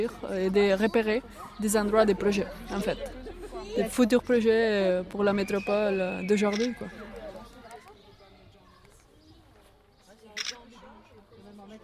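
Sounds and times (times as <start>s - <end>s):
speech: 0.0s - 7.0s
low murmuring voices: 0.0s - 11.8s
GoPro camera shutter clicks shooting burst photos in an architecture workshop: 10.4s - 10.6s.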